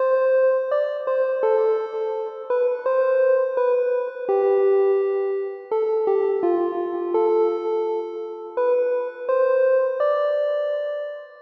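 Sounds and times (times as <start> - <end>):
lead stem music loop: 0.0 - 11.4.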